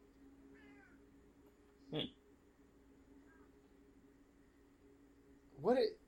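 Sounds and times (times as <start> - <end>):
low steady hum: 0.0 - 6.0
female cat meowing: 0.6 - 1.0
speech: 1.9 - 2.2, 5.6 - 6.0.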